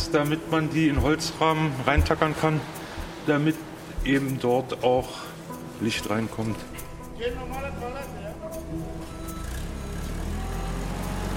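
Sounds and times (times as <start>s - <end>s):
speech: 0.1s - 8.9s
forklift engine rumbling while moving pallets to truck: 7.0s - 11.3s.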